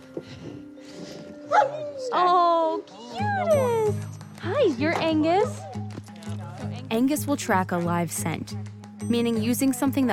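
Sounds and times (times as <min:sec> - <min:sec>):
search dogs yelping, barking and whimpering: 0:01.4 - 0:04.0
speech: 0:01.6 - 0:05.8, 0:06.9 - 0:10.1.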